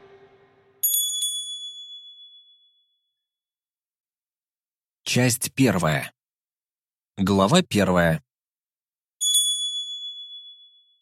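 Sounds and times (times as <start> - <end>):
small bell above a shop door ringing: 0.8 - 2.8, 9.2 - 10.9
speech: 5.1 - 6.2, 7.2 - 8.3.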